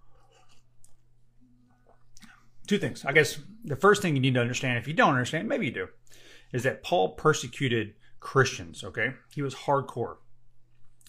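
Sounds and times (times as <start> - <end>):
low steady hum: 0.0 - 11.0
person sipping coffee: 1.6 - 2.6
speech: 2.7 - 10.2.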